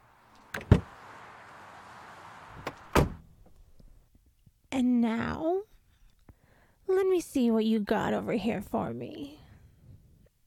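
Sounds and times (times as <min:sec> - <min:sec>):
car door shutting with a solid thump: 0:00.4 - 0:01.1, 0:02.5 - 0:03.3
car door latch clunks: 0:00.5 - 0:00.9, 0:02.6 - 0:03.2
speech: 0:04.8 - 0:05.7, 0:07.2 - 0:09.4.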